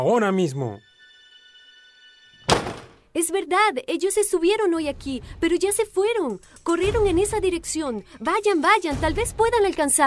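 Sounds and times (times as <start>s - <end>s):
speech: 0.0s - 0.9s, 3.2s - 10.0s
heavy thump against a wooden door: 2.5s - 3.0s.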